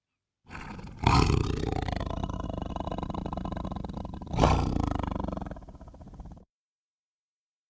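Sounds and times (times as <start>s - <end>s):
tiger roaring: 0.5s - 6.4s.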